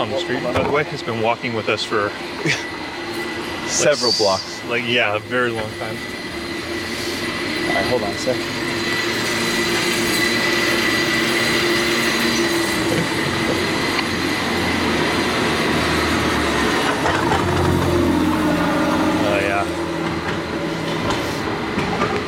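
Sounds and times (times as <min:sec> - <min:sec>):
speech: 0:00.0 - 0:02.8, 0:03.7 - 0:06.3, 0:07.7 - 0:08.6
cable car wheels squealing: 0:02.6 - 0:04.9, 0:05.7 - 0:22.2
San Francisco cable car rumbling on rails: 0:09.2 - 0:22.2.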